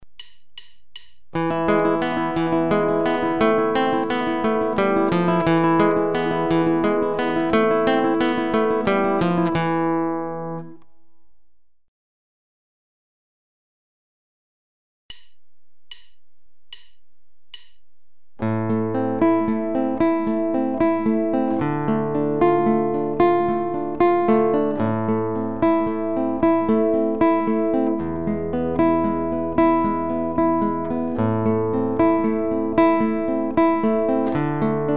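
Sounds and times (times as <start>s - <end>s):
classical guitar playing free-stroke, arpeggio and contrapuntal: 1.3s - 11.4s, 18.4s - 34.9s.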